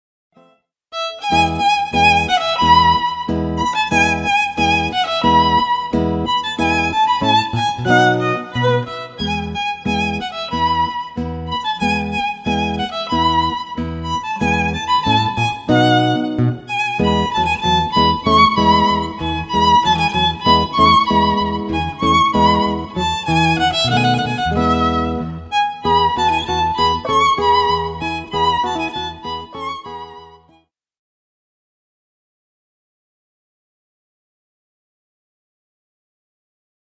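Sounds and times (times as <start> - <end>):
guitar duo: 1.4 - 30.3.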